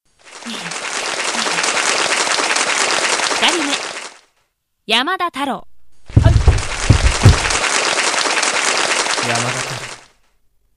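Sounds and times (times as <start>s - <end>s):
group of people applauding: 0.2s - 4.2s, 6.2s - 10.1s
speech: 4.9s - 5.7s, 9.2s - 9.9s.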